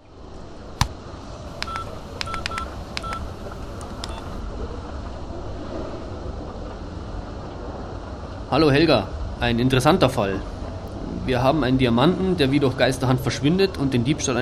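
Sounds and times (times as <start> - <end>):
intercom call dialing beeps: 1.6 - 4.4
speech: 8.5 - 10.6, 11.2 - 14.3.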